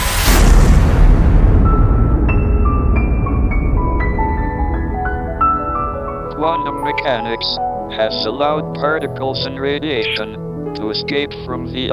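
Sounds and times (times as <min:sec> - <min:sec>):
huge booming explosion sound effect: 0:00.0 - 0:06.3
speech: 0:07.1 - 0:11.9.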